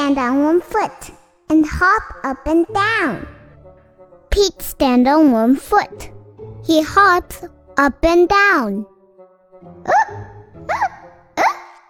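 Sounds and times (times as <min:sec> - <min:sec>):
speech: 0:00.1 - 0:03.4, 0:04.3 - 0:08.9, 0:09.6 - 0:11.0
sharp voiced hiccups: 0:09.8 - 0:11.8.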